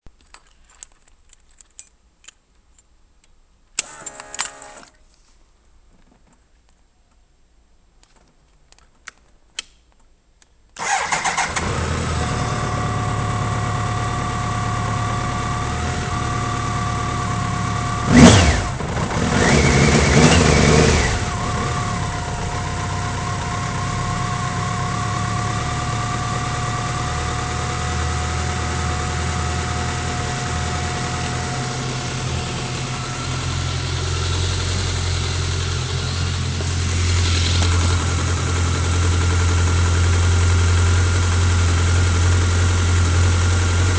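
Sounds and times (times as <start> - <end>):
BMW K 1100 LT SE motorcycle engine: 10.8 - 43.9.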